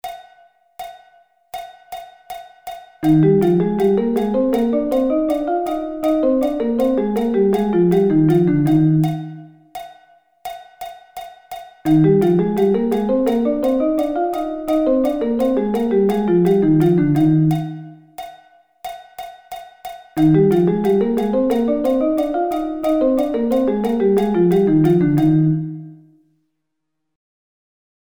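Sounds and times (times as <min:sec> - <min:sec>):
E flat thirds played: 0:03.1 - 0:09.4, 0:11.9 - 0:17.9, 0:20.2 - 0:25.9.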